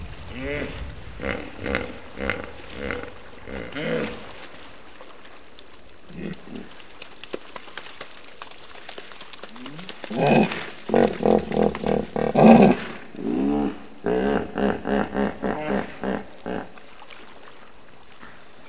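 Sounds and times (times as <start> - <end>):
hippopotamus grunting calls: 0.3 - 4.8, 6.0 - 6.8, 9.4 - 17.2.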